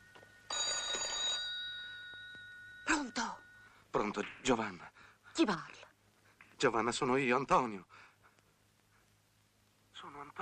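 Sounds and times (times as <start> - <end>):
telephone ringing with a trilling bell: 0.0 - 3.8
speech: 3.0 - 5.9, 6.6 - 8.1.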